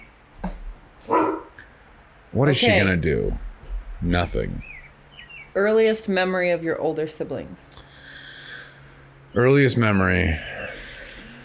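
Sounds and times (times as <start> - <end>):
dog barking: 1.1 - 1.6
speech: 2.4 - 4.7, 5.6 - 8.1, 9.3 - 10.6.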